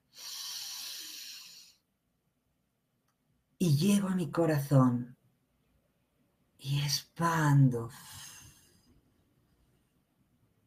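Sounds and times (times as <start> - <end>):
long airy breath drawn slowly: 0.0 - 1.9
speech: 3.6 - 5.2, 6.6 - 8.2.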